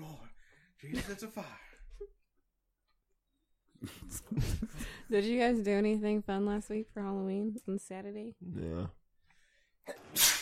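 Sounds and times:
speech: 0:00.8 - 0:02.2, 0:03.8 - 0:09.0, 0:09.8 - 0:10.3
person sneezing: 0:09.9 - 0:10.4.

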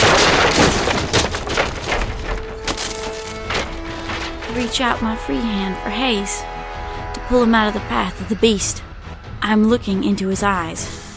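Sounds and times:
dense overlapping crashes and thuds: 0:00.0 - 0:05.1
wooden stage splintering and cracking under heavy weight: 0:00.0 - 0:05.2
drawn-out creaking groans of wood: 0:00.0 - 0:05.4
speech: 0:04.6 - 0:06.5, 0:07.3 - 0:11.0.

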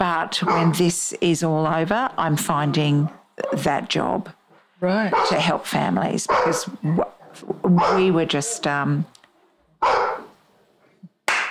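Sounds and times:
speech: 0:00.2 - 0:09.1, 0:09.8 - 0:10.1
dog barking: 0:00.4 - 0:00.9, 0:05.1 - 0:05.6, 0:06.2 - 0:06.8, 0:07.7 - 0:08.7, 0:09.8 - 0:10.4.

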